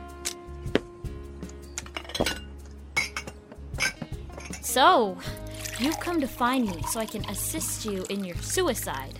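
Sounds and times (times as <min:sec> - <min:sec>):
wine glass clinking as wine is poured: 0:01.8 - 0:04.6
speech: 0:04.8 - 0:09.1
wine being poured into a big wine glass: 0:05.4 - 0:08.6.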